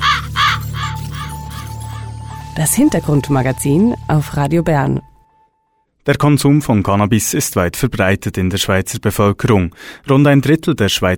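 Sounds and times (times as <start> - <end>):
raven cawing: 0.0 - 2.6
speech: 2.6 - 5.1, 6.0 - 11.1.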